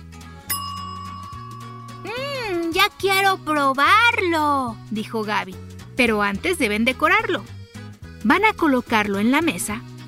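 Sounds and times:
steady musical background with low tones: 0.0 - 10.0
bright kitchen timer bell ding: 0.5 - 2.9
speech: 2.9 - 7.6, 8.2 - 9.9.

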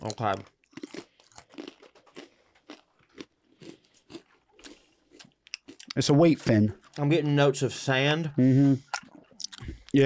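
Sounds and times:
person chewing a wheat cracker between wine tastings: 0.0 - 6.0
speech: 0.1 - 0.6, 6.0 - 8.9.

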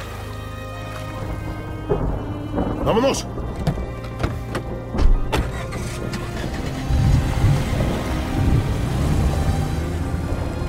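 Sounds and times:
heavy rain: 1.2 - 10.5
thunder rumbling: 1.5 - 5.3, 6.0 - 10.4
speech: 2.9 - 3.4.

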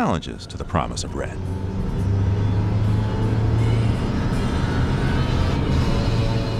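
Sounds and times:
speech: 0.0 - 1.8
heavy trucks loaded with orange palm fruits rumbling along a road in Indonesia: 0.0 - 6.5.

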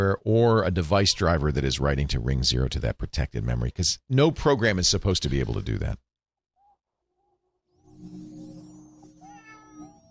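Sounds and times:
speech: 0.0 - 6.1
cat chirping: 7.8 - 10.0
cat meowing and yowling: 8.8 - 10.0.

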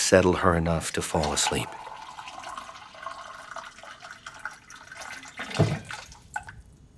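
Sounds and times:
speech: 0.1 - 1.9
water running from a kitchen tap into a glass: 1.1 - 6.6.

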